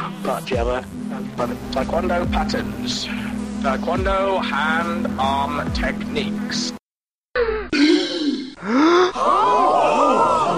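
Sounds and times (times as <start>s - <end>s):
speech: 0.3s - 6.8s
people gasping in shock: 7.7s - 10.4s.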